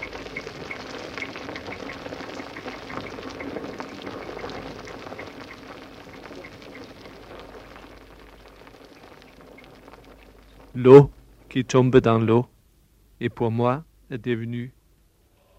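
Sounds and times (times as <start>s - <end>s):
wine bubbling and boiling in barrels: 0.0s - 12.4s
speech: 10.8s - 12.5s, 13.2s - 14.8s.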